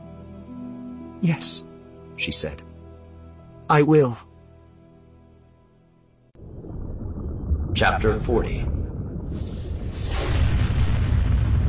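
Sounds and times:
speech: 0:01.2 - 0:02.7, 0:03.7 - 0:04.3, 0:07.8 - 0:08.7
starship turbolaser blast with deep explosive roar: 0:06.4 - 0:11.6.

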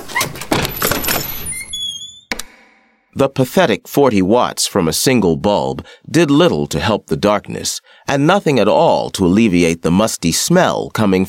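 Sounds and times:
barred pawn shop door in a cellar squeaking: 0:00.0 - 0:02.7
ring of keys pulled from a pocket jingling: 0:00.1 - 0:01.8
speech: 0:03.2 - 0:11.2.

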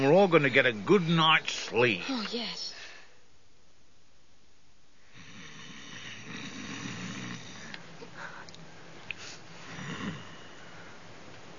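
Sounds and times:
speech: 0:00.2 - 0:02.7
dwarf snoring while asleep at a night camp in a forest: 0:05.1 - 0:07.8, 0:09.6 - 0:10.7.

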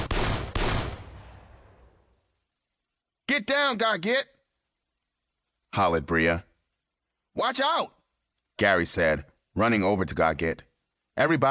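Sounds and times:
sharp gunshots with decay: 0:00.0 - 0:01.8
speech: 0:03.4 - 0:04.4, 0:05.7 - 0:06.5, 0:07.4 - 0:08.0, 0:08.6 - 0:11.4.

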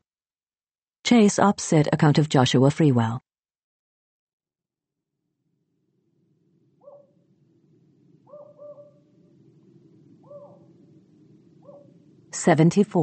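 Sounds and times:
speech: 0:01.1 - 0:03.3, 0:12.4 - 0:13.0
steady low rumble of noise: 0:06.4 - 0:13.0
owl shrieking outside: 0:06.8 - 0:07.2, 0:08.2 - 0:09.1, 0:10.2 - 0:10.8.

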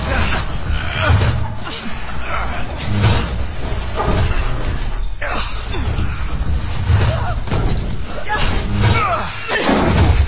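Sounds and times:
boxes and metal storage lockers slammed to barricade a door: 0:00.0 - 0:10.2.

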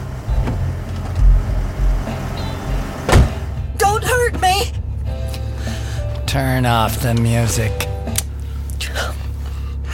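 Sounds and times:
car engine drone slowing to a halt on a road: 0:00.0 - 0:09.9
speech: 0:06.3 - 0:07.9.

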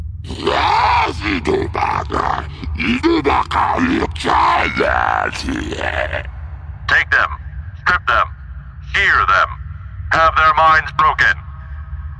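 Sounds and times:
low rumble: 0:00.0 - 0:12.1
hut letting out an angry monstrous scream: 0:00.3 - 0:06.3
speech: 0:01.1 - 0:06.3, 0:06.9 - 0:08.3, 0:08.9 - 0:11.4.

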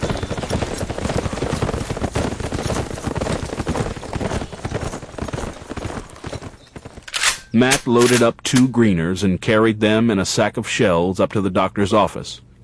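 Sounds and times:
hooves of ridden horses clip-clopping: 0:00.0 - 0:07.9
speech: 0:07.6 - 0:12.6.

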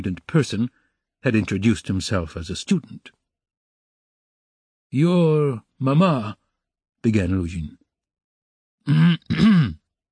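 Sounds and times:
speech: 0:00.0 - 0:03.2, 0:04.9 - 0:06.4, 0:07.0 - 0:07.8, 0:08.8 - 0:09.8
man loudly clearing his throat: 0:08.9 - 0:09.9.

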